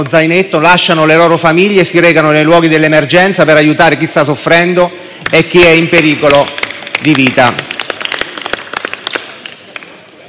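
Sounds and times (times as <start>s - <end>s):
speech: 0.0s - 7.7s
applause in a parliamentary chamber: 5.3s - 10.0s.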